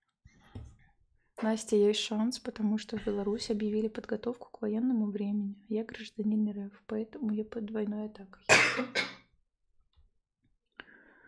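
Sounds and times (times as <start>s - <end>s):
speech: 1.4s - 9.1s
rough cough: 8.5s - 9.2s.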